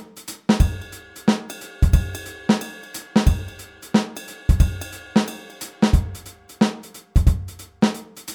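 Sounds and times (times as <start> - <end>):
groove music: 0.6 - 8.3.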